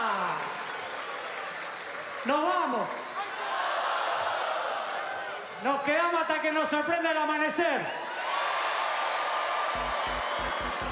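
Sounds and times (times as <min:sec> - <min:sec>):
crowd applause: 0:00.0 - 0:05.6, 0:08.2 - 0:10.8
speech: 0:02.2 - 0:03.0, 0:05.8 - 0:08.1.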